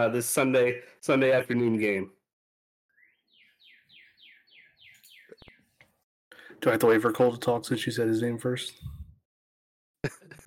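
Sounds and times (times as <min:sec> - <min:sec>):
speech: 0:00.0 - 0:02.2, 0:06.6 - 0:09.0, 0:10.0 - 0:10.4
bird chirping loudly: 0:02.9 - 0:05.8.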